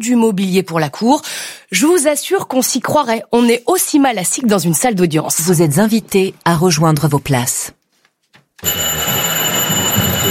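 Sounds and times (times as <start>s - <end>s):
speech: 0.0s - 7.8s, 8.6s - 9.8s
loud electric bell ringing to announce the court: 8.6s - 10.2s.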